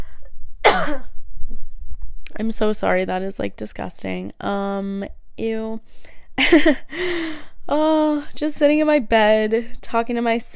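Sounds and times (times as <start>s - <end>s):
person coughing: 0.6s - 1.2s
speech: 2.4s - 10.5s.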